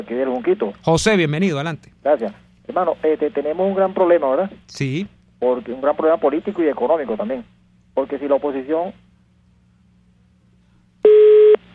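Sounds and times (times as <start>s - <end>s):
speech: 0.0s - 9.0s
phone line disconnect tone as a call drops: 11.0s - 11.6s.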